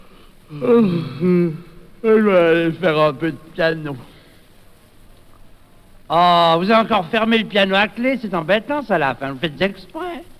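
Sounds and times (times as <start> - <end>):
person yawning: 0.5 - 1.9
speech: 0.5 - 4.1, 6.1 - 10.3.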